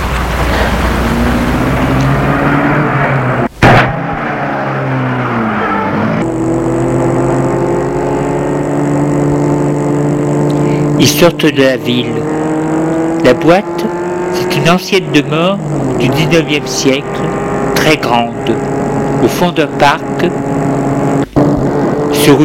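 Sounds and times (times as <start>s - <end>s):
car engine rumbling and driving: 0.0s - 22.4s
sharp thump: 3.6s - 4.3s
speech: 11.1s - 12.3s, 13.3s - 20.6s, 22.3s - 22.4s.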